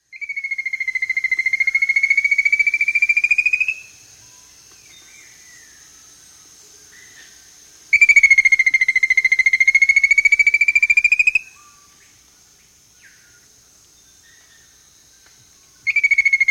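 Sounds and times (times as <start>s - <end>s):
Rufous-Capped Antbird calling in S. America: 0.2s - 4.0s, 7.9s - 12.0s, 15.8s - 16.4s.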